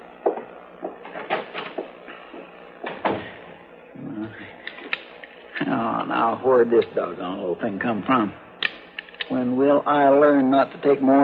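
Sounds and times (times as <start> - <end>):
wooden door opening and closing: 0.3 - 1.9, 2.8 - 3.4
speech: 5.8 - 8.4, 9.3 - 11.2.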